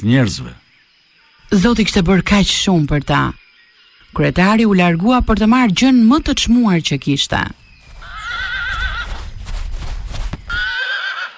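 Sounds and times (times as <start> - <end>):
speech: 0.0 - 0.6, 1.5 - 3.4, 4.1 - 7.6
horse hooves clopping and shuffling: 7.8 - 11.3
horse whinnying: 8.0 - 9.2, 10.5 - 11.3.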